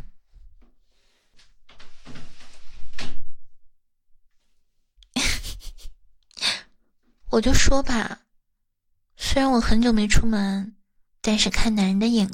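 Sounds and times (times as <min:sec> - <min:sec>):
door opening with scraping rattling sweep: 0:01.7 - 0:03.3
speech: 0:07.4 - 0:08.2, 0:09.3 - 0:12.3.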